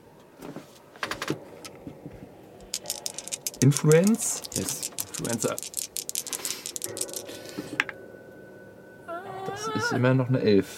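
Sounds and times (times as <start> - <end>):
dice clattering and tumbling across a hard surface: 2.6 - 7.3
speech: 3.6 - 5.8, 9.8 - 10.7.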